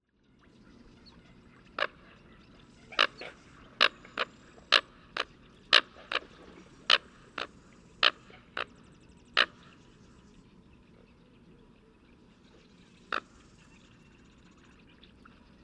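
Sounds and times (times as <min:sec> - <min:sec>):
American Coot Fulica americana: 0:02.9 - 0:08.8.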